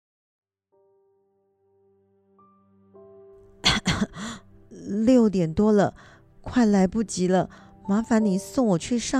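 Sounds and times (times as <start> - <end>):
person coughing: 3.6 - 4.4
speech: 4.0 - 9.1.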